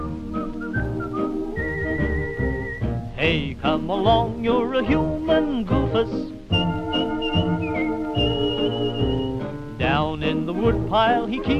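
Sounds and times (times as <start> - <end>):
person whistling a bright stepping melody: 0.0 - 3.0, 4.9 - 9.5
steady musical backing: 0.0 - 11.5
speech: 3.2 - 6.4, 10.6 - 11.5.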